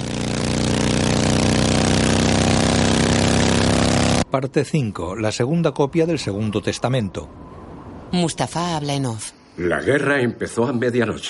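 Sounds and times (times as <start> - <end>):
motorcycle engine driving over snow: 0.0 - 4.3
speech: 4.4 - 7.4, 8.1 - 11.2.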